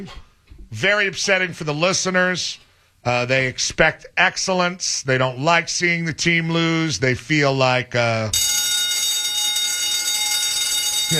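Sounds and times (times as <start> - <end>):
speech: 0.0 - 8.5
alarm bell ringing: 8.3 - 11.1.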